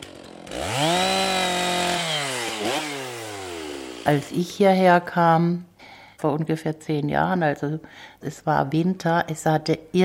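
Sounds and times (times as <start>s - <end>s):
forest workers' chainsaw cutting raw timber: 0.0s - 4.4s
speech: 4.0s - 10.0s.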